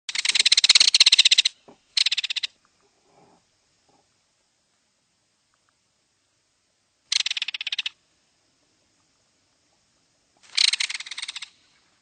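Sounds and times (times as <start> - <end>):
Belted Kingfisher: 0.1 - 2.6, 7.1 - 8.0, 10.4 - 12.0.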